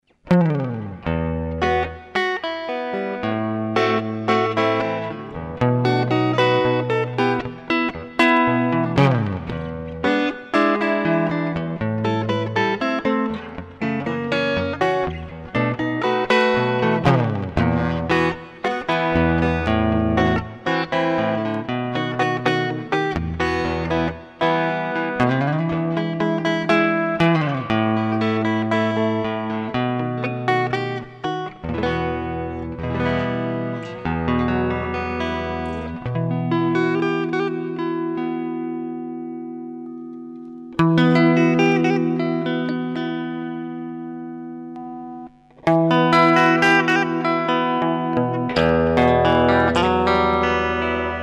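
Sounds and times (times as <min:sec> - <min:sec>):
Telecaster electric guitar: 0:00.0 - 0:51.2.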